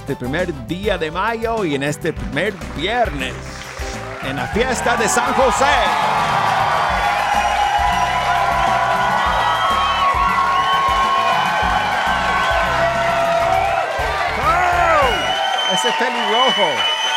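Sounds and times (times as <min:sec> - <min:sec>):
speech: 0:00.1 - 0:03.6, 0:04.2 - 0:06.8, 0:15.8 - 0:17.0
dense crowd cheering: 0:02.6 - 0:17.1
individual voices shouting and whooping: 0:04.2 - 0:17.1.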